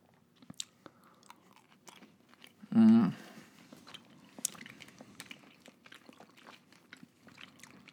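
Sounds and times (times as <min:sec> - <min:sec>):
wet chewing of sour gummy candy: 0:00.0 - 0:07.9
loud voiced hum or murmur: 0:02.6 - 0:03.3.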